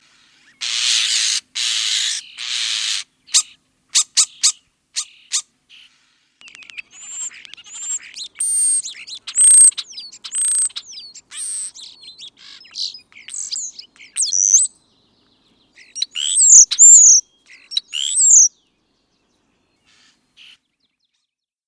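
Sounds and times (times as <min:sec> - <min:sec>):
European starling high slurred whistles and squeaky notes: 0:00.5 - 0:14.7, 0:15.8 - 0:18.5.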